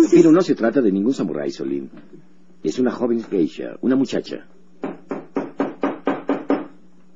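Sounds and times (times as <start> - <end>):
speech: 0.0 - 4.6
firm knocking on a door: 4.8 - 6.8.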